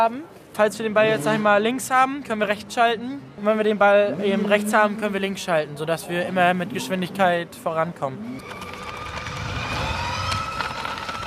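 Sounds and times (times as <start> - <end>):
speech: 0.0 - 8.7
small electric motorcycles ridden by children in a sports hall: 8.4 - 11.2.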